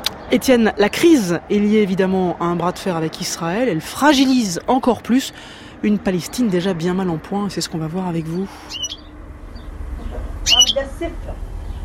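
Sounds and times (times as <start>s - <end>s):
two small caged birds chirping indoors in a family home: 0.0s - 11.8s
speech: 0.3s - 9.0s, 10.4s - 11.5s.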